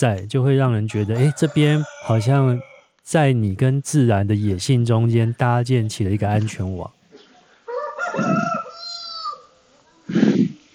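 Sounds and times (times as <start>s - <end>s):
speech: 0.0s - 7.0s
rooster crowing: 0.9s - 3.0s, 7.7s - 9.6s.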